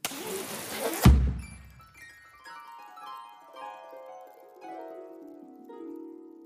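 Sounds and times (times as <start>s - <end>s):
rushing hiss: 0.0s - 1.7s
loud bang of a confetti cannon: 0.0s - 1.8s
bright sparkling chime tones cascading downward: 1.4s - 4.2s.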